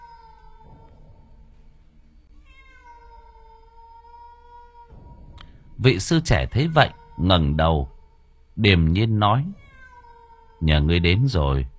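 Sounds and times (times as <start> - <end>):
cat meowing mournfully in the night: 0.0 - 1.0, 2.4 - 5.1, 6.2 - 8.3, 9.5 - 10.9
speech: 5.8 - 8.0, 8.6 - 9.6, 10.6 - 11.7.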